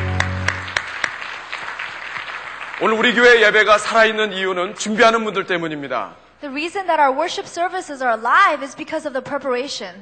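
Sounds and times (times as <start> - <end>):
crowd applauding at a church worship service: 0.0 - 4.0
speech: 2.8 - 10.0.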